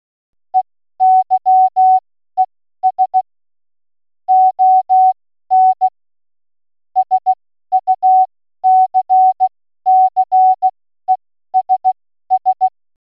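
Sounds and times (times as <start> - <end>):
Morse code beep tone keyed in dots and dashes: 1.0 - 2.0, 2.9 - 3.2, 4.3 - 5.9, 7.0 - 12.7.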